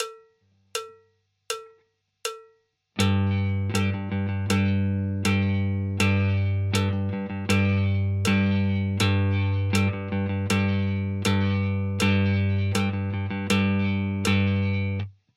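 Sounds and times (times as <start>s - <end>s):
rhythm guitar: 3.0s - 15.1s.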